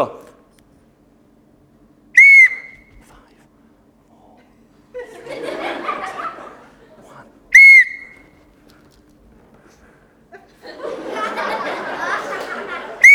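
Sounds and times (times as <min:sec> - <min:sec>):
shrill whistle blasts signalling turns in a group acting game: 0:02.2 - 0:03.0, 0:07.5 - 0:08.4
several people laughing and chuckling: 0:04.9 - 0:07.3, 0:09.8 - 0:13.1.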